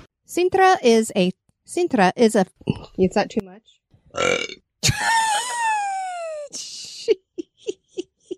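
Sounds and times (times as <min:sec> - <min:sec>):
speech: 0:00.3 - 0:05.7, 0:06.5 - 0:07.3
woman burping loudly: 0:04.2 - 0:04.6.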